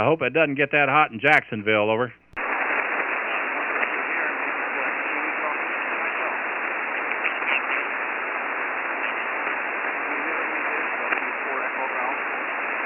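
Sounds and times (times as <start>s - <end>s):
speech: 0.0s - 2.2s
hissing radio static: 0.0s - 12.8s
faint band-limited ham radio voice in a weak transmission: 2.7s - 12.8s.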